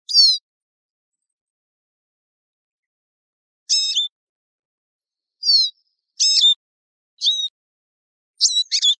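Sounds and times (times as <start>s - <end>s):
Eurasian siskin calling: 0.1s - 0.4s, 3.7s - 4.2s, 5.4s - 6.6s, 7.2s - 7.6s, 8.4s - 8.9s.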